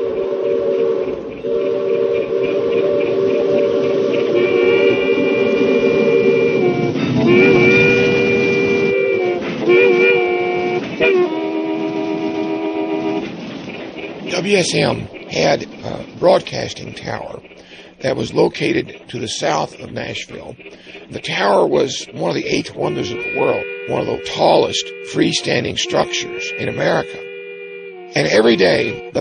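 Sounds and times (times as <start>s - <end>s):
passenger train whistle blasts: 0.0s - 13.4s, 20.4s - 29.2s
passenger train roaring and rumbling as it rushes past: 0.0s - 29.2s
speech: 14.5s - 17.4s, 18.0s - 27.2s, 28.2s - 29.2s.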